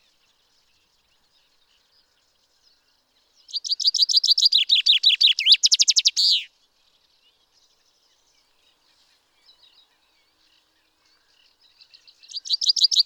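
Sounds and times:
common chaffinch Fringilla coelebs singing: 3.4 - 6.5, 11.8 - 13.0.

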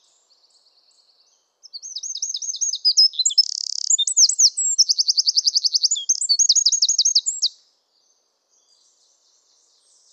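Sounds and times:
Eurasian wren Troglodytes troglodytes song: 1.6 - 7.6.

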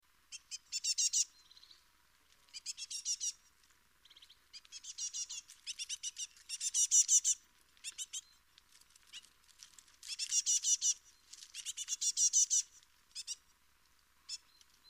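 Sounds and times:
great tit Parus major calling in buzzy chattering bursts: 0.3 - 1.7, 2.5 - 3.4, 4.1 - 8.3, 10.1 - 13.4.

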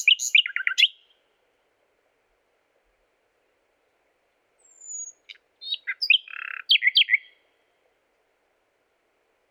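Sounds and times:
common nightingale Luscinia megarhynchos singing: 0.0 - 1.2, 4.6 - 7.5.

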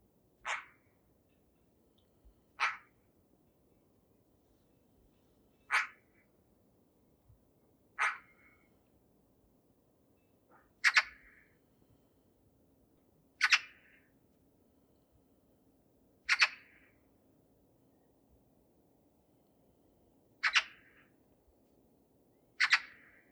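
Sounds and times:
Eurasian magpie giving harsh rasping calls: 0.4 - 0.8, 2.6 - 2.9, 5.7 - 6.0, 8.0 - 8.4, 10.8 - 11.4, 13.4 - 14.0, 22.6 - 23.2.

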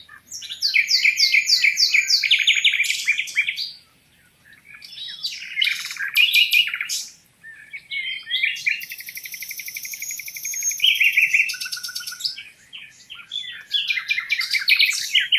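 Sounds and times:
common nightingale Luscinia megarhynchos song: 0.0 - 15.3.

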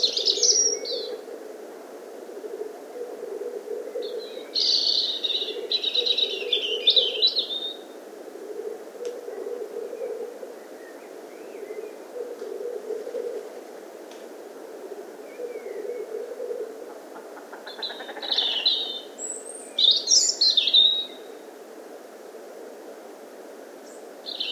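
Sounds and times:
European robin Erithacus rubecula singing: 0.0 - 1.2, 3.9 - 7.9, 9.9 - 12.0, 15.2 - 16.2, 17.6 - 21.4, 23.8 - 24.5
steady low background noise: 0.0 - 24.5.

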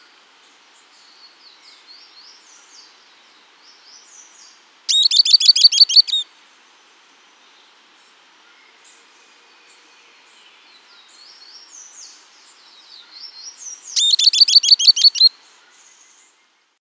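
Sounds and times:
bird chirping: 0.8 - 6.2, 7.4 - 16.7
faint twittering: 4.9 - 6.2, 13.2 - 16.0.

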